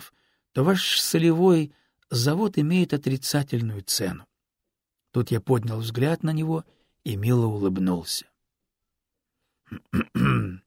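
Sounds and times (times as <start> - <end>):
speech: 0.5 - 4.3, 5.2 - 8.3, 9.7 - 10.4
man noisily clearing his throat: 9.7 - 10.6.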